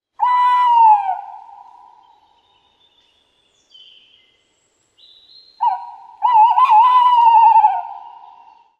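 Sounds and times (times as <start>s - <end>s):
tawny owl singing in the Netherlands: 0.2s - 3.0s, 5.0s - 8.7s.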